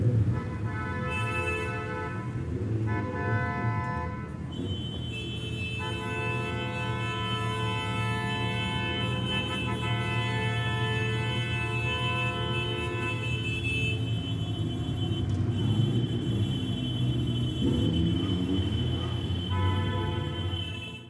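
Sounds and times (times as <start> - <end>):
horns honking on New Year's Eve: 0.2 - 21.0.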